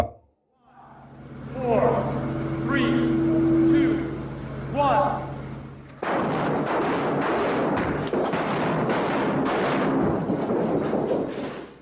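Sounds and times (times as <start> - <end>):
flashbang charges exploding: 2.1 - 11.7
sustained heavy rumbling and crashing debris: 5.9 - 11.7
wall toppling over: 6.0 - 11.7.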